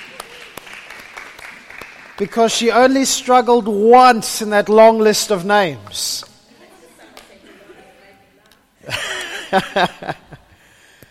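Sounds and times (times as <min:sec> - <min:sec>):
small group clapping: 0:00.0 - 0:02.8
speech: 0:02.2 - 0:06.3, 0:09.5 - 0:10.3
laughter: 0:08.8 - 0:10.6.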